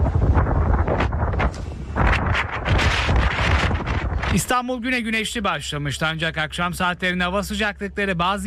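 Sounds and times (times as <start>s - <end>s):
strong wind gusts buffeting the microphone: 0.0s - 4.8s
speech: 4.4s - 8.4s.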